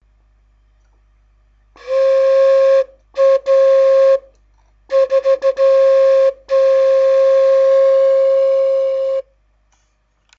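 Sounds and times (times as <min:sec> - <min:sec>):
flute: 0:01.8 - 0:09.3.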